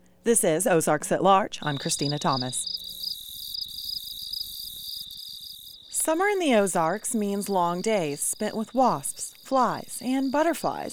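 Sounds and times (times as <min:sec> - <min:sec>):
speech: 0:00.2 - 0:02.8, 0:06.1 - 0:10.9
katydids and crickets chirping on a warm summer night in the Ozarks: 0:01.6 - 0:10.9.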